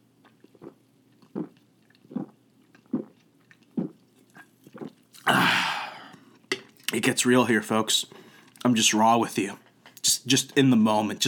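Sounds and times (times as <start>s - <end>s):
person drinking sips of a beverage: 0.2s - 6.9s
breathy exhale: 5.3s - 6.3s
speech: 7.0s - 9.6s, 10.2s - 11.2s.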